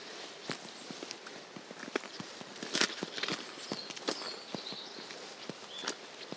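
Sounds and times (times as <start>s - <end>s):
boots crunching footsteps up a dry stream bed path: 0.0s - 6.3s.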